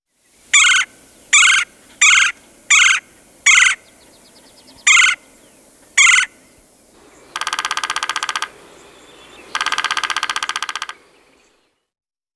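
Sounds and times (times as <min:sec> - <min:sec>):
red-bellied woodpecker rapid rattling bursts: 0:00.5 - 0:03.9, 0:04.8 - 0:05.2, 0:06.0 - 0:06.4, 0:07.0 - 0:11.4
red-bellied woodpecker calls: 0:00.5 - 0:06.4, 0:07.0 - 0:11.6.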